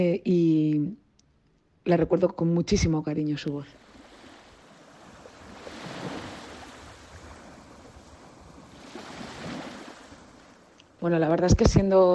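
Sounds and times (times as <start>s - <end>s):
speech: 0.0s - 1.0s, 1.8s - 3.9s, 11.0s - 12.1s
ocean waves breaking on the shore: 3.7s - 11.4s
wind rumble: 3.8s - 11.9s.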